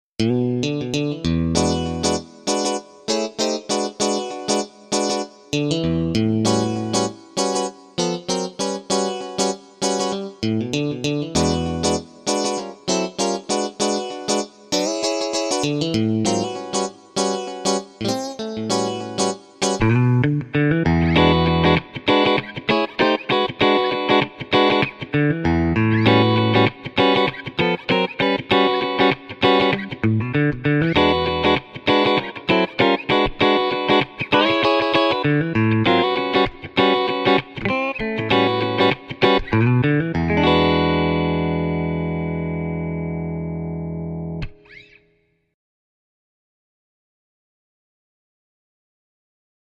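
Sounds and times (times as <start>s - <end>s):
solid electric guitar: 0.2s - 44.9s.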